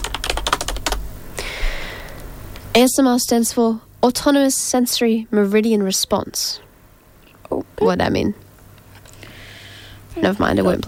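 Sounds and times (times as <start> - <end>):
fingers typing on a computer keyboard: 0.0 - 1.0
speech: 2.8 - 6.7, 7.5 - 8.4, 10.2 - 10.8.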